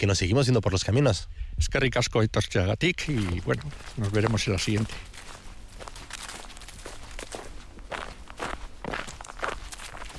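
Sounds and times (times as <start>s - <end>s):
speech: 0.0s - 5.3s
footsteps walking along a trail from a train station: 2.8s - 10.1s.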